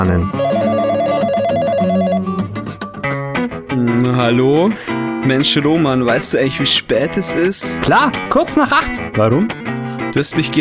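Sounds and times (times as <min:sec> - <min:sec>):
speech: 0:00.0 - 0:00.5, 0:04.2 - 0:10.5
melodic tones: 0:00.2 - 0:02.6
telephone ringing with an electronic warbling tone: 0:00.3 - 0:02.5.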